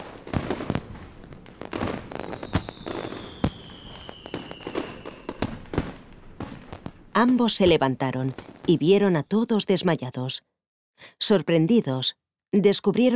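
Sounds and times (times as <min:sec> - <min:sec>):
fireworks rockets exploding with sharp cracks: 0:00.0 - 0:09.2
speech: 0:07.2 - 0:13.1.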